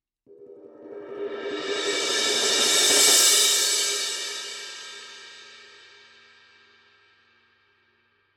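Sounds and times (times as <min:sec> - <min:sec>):
Paiste Formula 602 Classic Sounds 20 paperthin cymbal roll: 0:00.3 - 0:06.5.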